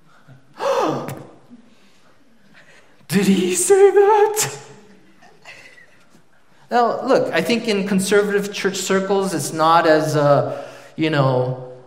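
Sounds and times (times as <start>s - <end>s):
single voice imitating the gasp of wedding guests: 0.6s - 1.2s
speech: 3.1s - 4.7s, 6.7s - 11.6s.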